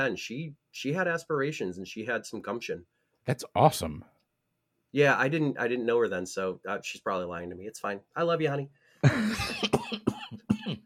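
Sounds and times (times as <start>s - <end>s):
speech: 0.0s - 4.1s, 4.9s - 10.4s
rough coughs: 9.0s - 10.8s.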